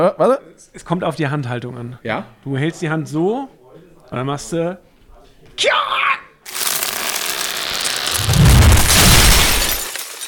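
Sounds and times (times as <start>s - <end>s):
speech: 0.0s - 4.9s, 5.6s - 6.2s
falling tree splintering: 6.5s - 10.2s
tree hitting the ground with a heavy thud: 7.6s - 9.9s.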